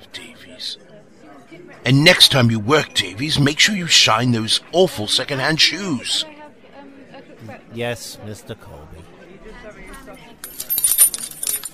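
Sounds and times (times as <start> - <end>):
speech: 0.5 - 6.3, 7.5 - 9.1
set of hotel room keys jangling as they are handed over: 10.4 - 11.7.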